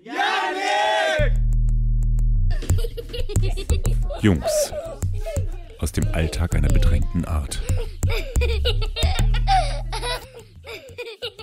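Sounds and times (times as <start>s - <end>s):
group of boys shouting together at full volume: 0.0s - 1.2s
steady low musical drone: 1.2s - 10.7s
laughter: 2.5s - 11.4s
speech: 4.2s - 4.8s, 5.8s - 8.3s.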